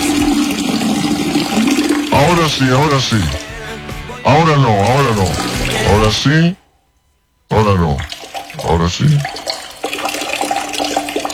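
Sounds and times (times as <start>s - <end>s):
water dripping and trickling: 0.0s - 3.6s, 4.8s - 5.9s, 8.0s - 11.3s
speech: 2.5s - 3.4s, 4.2s - 6.6s, 7.5s - 9.4s.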